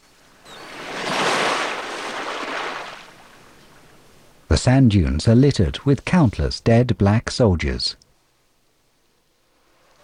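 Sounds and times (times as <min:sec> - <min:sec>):
waves lapping gently onto a sandy beach: 0:00.0 - 0:04.5
speech: 0:04.6 - 0:08.0.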